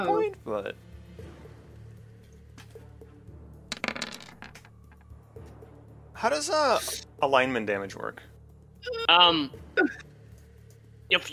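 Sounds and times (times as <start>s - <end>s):
speech: 0.0s - 1.3s, 6.2s - 10.1s, 11.1s - 11.3s
dice clattering across a table during a tabletop role-playing game: 3.7s - 5.0s.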